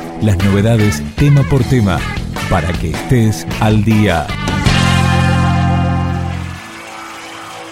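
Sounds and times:
speech: 0.2s - 4.4s
loud distorted electric guitar chord with heavy reverb in live rock band music: 4.4s - 7.7s.

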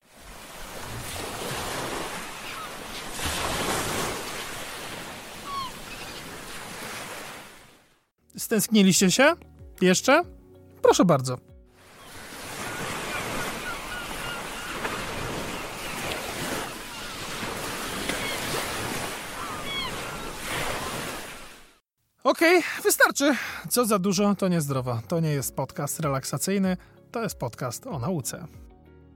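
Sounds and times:
sea waves breaking on the shore: 0.0s - 8.1s, 11.8s - 21.8s
speech: 8.4s - 11.5s, 22.3s - 28.7s.

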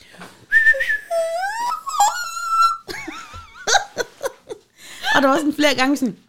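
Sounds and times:
voice imitating a little girl's piercing high scream: 0.8s - 2.9s
breathy laughter: 1.1s - 4.7s
speech: 5.2s - 6.2s.

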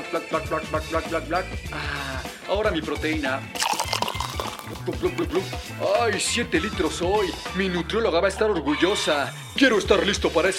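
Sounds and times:
speech: 0.1s - 3.7s, 4.7s - 10.5s
voice imitating water glugging into a container: 3.6s - 5.6s.

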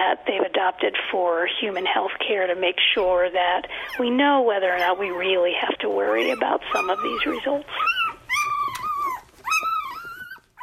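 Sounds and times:
speech: 0.0s - 8.0s
female golden retriever caring for puppies growling and whimpering: 3.6s - 10.6s.

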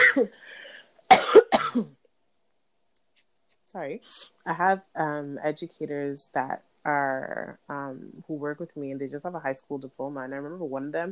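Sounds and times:
person coughing: 0.0s - 0.4s, 1.1s - 1.9s
speech: 0.2s - 0.7s, 1.8s - 2.0s, 3.7s - 11.1s.

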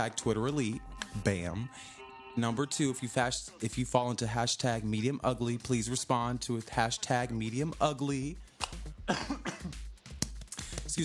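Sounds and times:
speech: 0.0s - 8.5s, 9.1s - 9.8s
person coughing harshly into a microphone: 9.0s - 9.9s.

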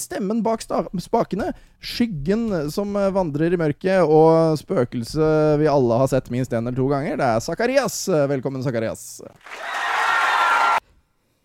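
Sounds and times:
speech: 0.0s - 9.9s
dense burst of applause: 9.4s - 10.8s.

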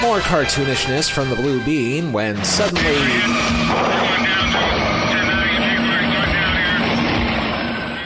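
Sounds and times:
speech: 0.1s - 4.8s
voices: 0.1s - 8.0s
helicopter engine roar of helicopter going down in flames: 2.4s - 8.0s.

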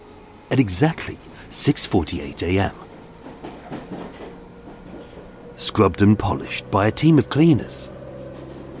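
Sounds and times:
electric train pulling out: 0.0s - 8.7s
speech: 0.5s - 2.9s, 5.6s - 7.9s
heavy clunks and rattles from the train carriages: 2.1s - 7.4s.

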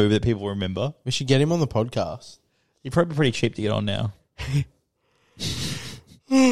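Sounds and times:
speech: 0.0s - 4.8s, 5.4s - 6.4s
person yawning: 5.4s - 6.4s.

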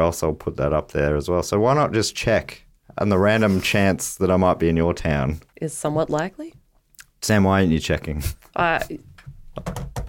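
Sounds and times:
speech: 0.0s - 6.6s, 7.2s - 9.9s
fingertips tapping a hard tabletop mimicking keyboard typing: 9.5s - 10.0s.

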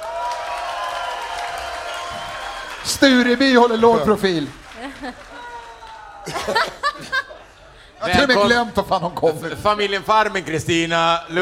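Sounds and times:
live crowd clapping and cheering: 0.0s - 6.9s
speech: 2.8s - 5.3s, 6.3s - 7.1s, 8.0s - 11.3s
laughter: 4.6s - 7.8s.

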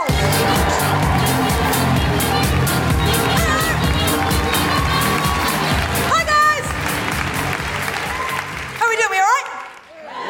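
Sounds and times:
comedy show audience whooping and cheering: 0.0s - 6.6s, 7.4s - 8.8s
audience clapping at a comedy show in Manchester: 0.1s - 10.2s.

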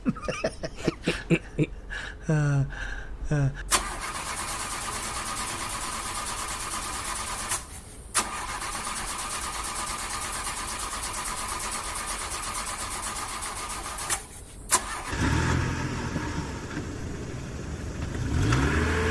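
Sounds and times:
laughter: 0.0s - 2.6s
speech: 2.3s - 3.6s
pickup truck engine cranking and starting: 3.7s - 19.0s
pickup truck engine roaring and revving as it pulls away: 14.8s - 19.0s.

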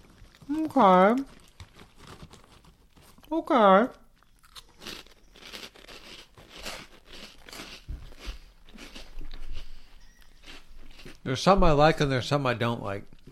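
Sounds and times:
crunching a garlic-flavour chickpea snack eaten from a bag: 0.0s - 3.4s, 4.0s - 11.3s
speech: 0.5s - 1.4s, 3.3s - 4.0s, 11.2s - 13.1s.

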